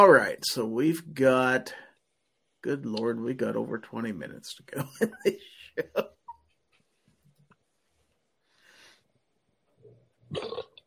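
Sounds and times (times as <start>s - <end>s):
speech: 0.0s - 1.9s, 2.6s - 6.2s, 10.3s - 10.7s
person burping: 10.3s - 10.8s.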